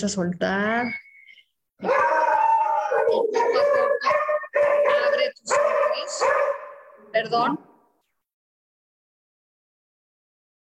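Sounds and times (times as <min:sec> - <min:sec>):
speech: 0:00.0 - 0:01.0, 0:01.8 - 0:02.1, 0:03.1 - 0:07.7
dog howling and whimpering: 0:01.8 - 0:06.4.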